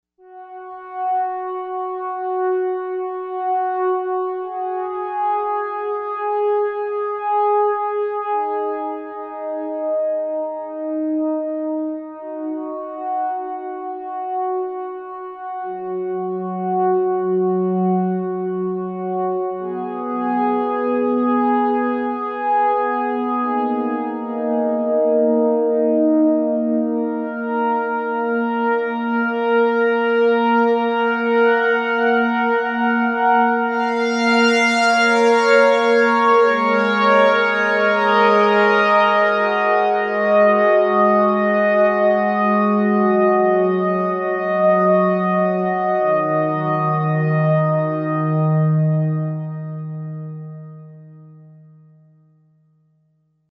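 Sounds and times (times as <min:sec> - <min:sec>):
slow horn on Novation UltraNova synthesizer: 0:00.2 - 0:51.9.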